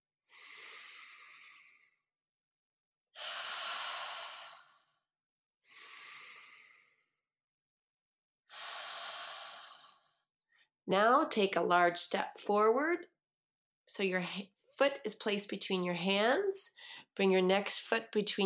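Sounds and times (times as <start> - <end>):
deep slow breathing during a yoga stretch: 0.3 - 2.2, 3.2 - 7.3, 8.5 - 10.6
speech: 10.9 - 13.1, 13.9 - 18.4.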